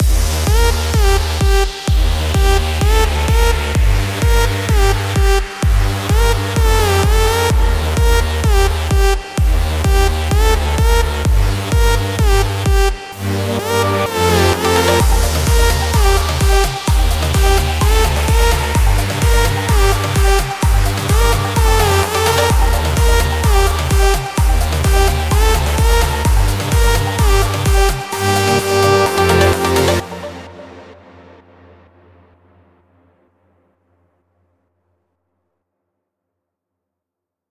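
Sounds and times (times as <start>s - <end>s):
full drum loop from a construction kit: 0.0s - 13.2s, 14.2s - 30.6s.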